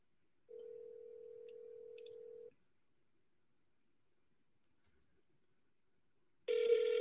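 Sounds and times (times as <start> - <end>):
phone ringback tone through the earpiece: 0.5 - 2.5, 6.5 - 6.9.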